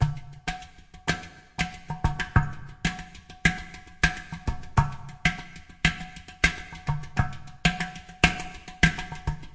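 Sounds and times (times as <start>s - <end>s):
udu groove with drum loops and breaks: 0.0s - 9.5s.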